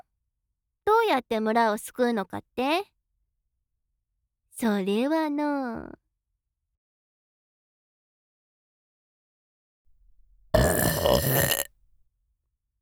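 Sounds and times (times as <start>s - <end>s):
speech: 0.9s - 2.9s, 4.6s - 6.0s, 11.1s - 11.6s
drawn-out burp blown into someone's ear: 10.5s - 11.7s.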